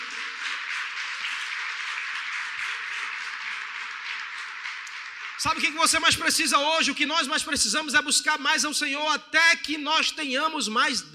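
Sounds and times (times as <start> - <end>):
crowd applauding: 0.0 - 6.6
speech: 5.4 - 11.1.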